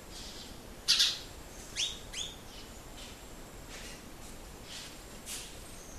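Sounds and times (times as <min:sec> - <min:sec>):
quiet background hiss: 0:00.0 - 0:05.9
House sparrow Passer domesticus chirping: 0:00.2 - 0:02.7.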